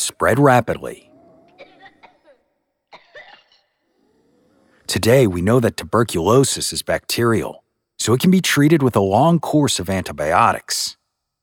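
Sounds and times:
speech: 0.1s - 1.1s, 4.9s - 11.0s
harsh rapid coughing fit: 1.5s - 3.8s.

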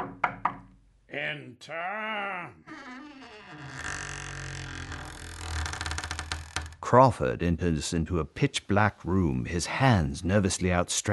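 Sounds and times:
knocking on a heavy oak door: 0.0s - 0.8s
speech: 1.2s - 4.2s, 6.8s - 11.1s.

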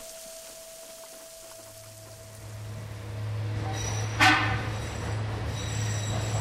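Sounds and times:
worker tram rumbling along rails inside a tunnel: 0.0s - 6.3s
metallic screech of tram: 3.6s - 6.3s.

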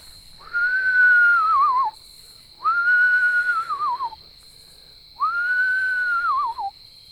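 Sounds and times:
person whistling owl-like calls to call an owl: 0.4s - 2.0s, 2.6s - 4.2s, 5.2s - 6.8s.

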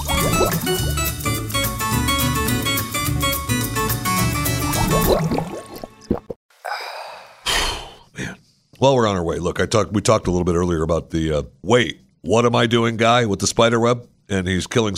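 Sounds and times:
water pouring from a water cooler into a cup in a break room: 0.0s - 1.0s, 4.8s - 6.3s
music: 0.0s - 6.2s
speech: 8.8s - 14.9s.

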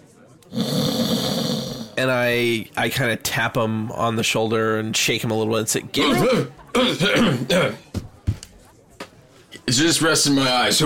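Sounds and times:
man at a bar snoring: 0.5s - 2.0s
speech: 2.0s - 7.8s, 9.7s - 10.8s.

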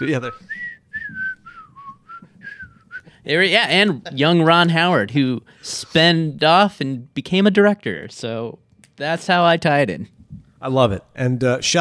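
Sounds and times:
speech: 0.0s - 1.2s, 3.2s - 11.7s
person whistling a TV theme tune: 0.0s - 3.2s.

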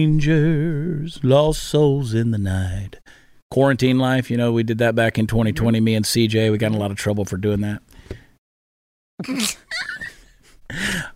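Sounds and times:
speech: 0.0s - 8.2s, 9.2s - 9.6s
sharp breathy gasps: 3.1s - 3.4s, 7.9s - 8.4s, 10.7s - 11.1s
loud sneeze: 9.2s - 9.7s.

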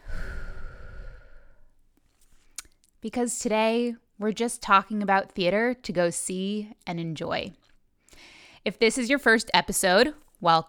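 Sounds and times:
deep breath in and out during a guided breathing moment: 0.0s - 1.8s, 8.1s - 8.6s
speech: 3.0s - 10.6s.

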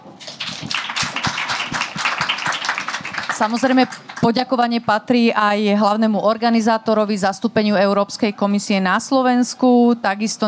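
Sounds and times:
crowd applauding at the close of a discussion event: 0.2s - 4.3s
speech: 3.4s - 10.4s.

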